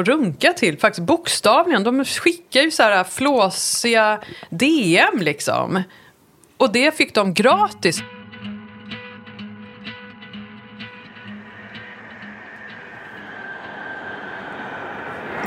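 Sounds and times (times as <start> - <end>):
speech: 0.0 - 6.0, 6.6 - 8.2
commuter train approaching a station platform: 10.1 - 15.4
low mechanical hum at a station platform: 11.1 - 15.4.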